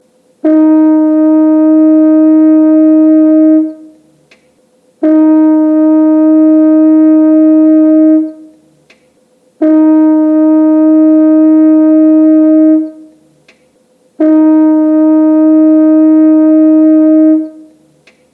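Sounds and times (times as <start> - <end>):
French horn in B flat: 0.4 - 4.0, 5.0 - 8.6, 9.6 - 13.2, 14.2 - 17.9.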